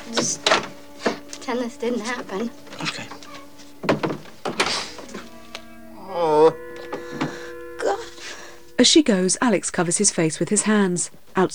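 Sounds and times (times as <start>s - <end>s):
bedroom door being opened: 0.0s - 1.5s, 2.4s - 7.6s
speech: 0.1s - 0.8s, 1.5s - 3.2s, 6.1s - 6.6s, 8.8s - 11.5s.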